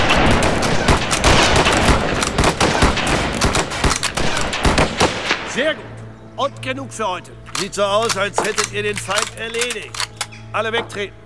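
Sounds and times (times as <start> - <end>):
volley of rifle fire during shooting practice: 0.0 - 5.6
speech: 5.6 - 11.2.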